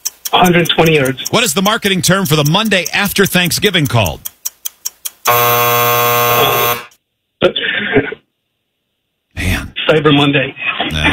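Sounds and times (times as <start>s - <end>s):
quick clicks: 0.0s - 5.3s
speech: 0.3s - 4.3s, 5.3s - 6.7s, 7.4s - 8.2s, 9.9s - 11.1s
loud harsh game show time-up buzzer: 5.3s - 7.0s.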